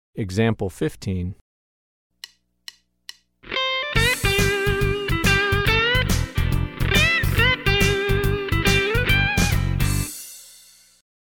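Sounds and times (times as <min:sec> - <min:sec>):
country rock music: 0:03.4 - 0:10.2.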